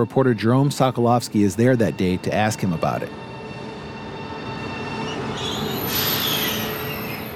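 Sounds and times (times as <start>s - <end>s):
speech: 0.0s - 3.3s
high-speed train on Spain's rail network rumbling along the rails: 0.0s - 7.3s
faint train wheel squeal: 4.6s - 7.3s.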